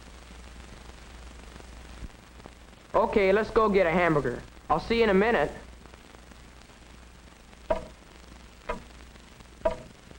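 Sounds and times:
speech: 3.0 - 5.6
large hall clock ticking: 7.7 - 8.0, 8.7 - 8.9, 9.6 - 10.0.

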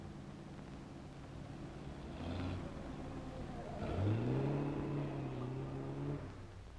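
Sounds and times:
car engine revving as it drives up: 1.3 - 6.5.

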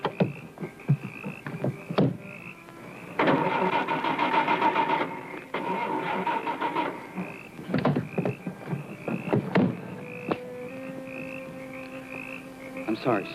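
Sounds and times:
car engine cranking but failing to start: 1.6 - 10.2
speech: 13.0 - 13.3.

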